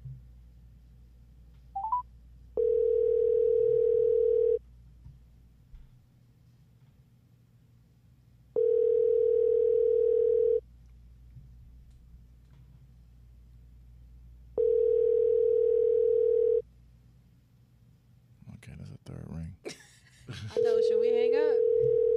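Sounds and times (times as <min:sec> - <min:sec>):
ringback tone of an outgoing phone call: 0:01.8 - 0:02.0, 0:02.6 - 0:04.6, 0:08.6 - 0:10.6, 0:14.6 - 0:16.6, 0:20.6 - 0:22.1.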